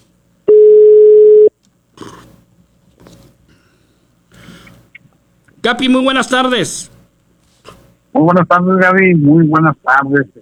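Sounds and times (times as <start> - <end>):
telephone line tone while dialing a call: 0.5 - 1.5
speech: 5.6 - 6.9, 8.2 - 10.3.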